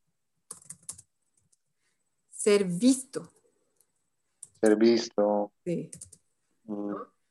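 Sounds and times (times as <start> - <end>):
keyboard typing: 0.5 - 1.7, 3.3 - 4.8, 5.9 - 6.3
speech: 2.4 - 3.4, 4.6 - 7.2.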